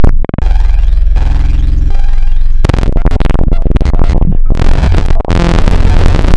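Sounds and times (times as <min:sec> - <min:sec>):
video game sounds: 0:00.0 - 0:06.3.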